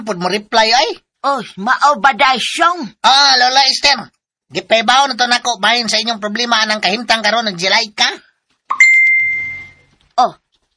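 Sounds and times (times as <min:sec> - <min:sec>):
speech: 0:00.0 - 0:08.8, 0:10.2 - 0:10.4
cellphone chat message notification chime: 0:08.7 - 0:09.9.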